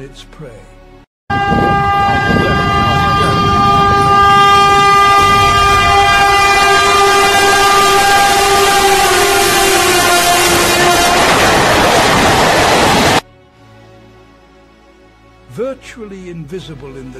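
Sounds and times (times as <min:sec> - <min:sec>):
speech: 0:00.0 - 0:00.8, 0:16.0 - 0:17.1
rumbling rail noise of a passing train: 0:01.3 - 0:13.2
train horn blaring: 0:01.3 - 0:13.2.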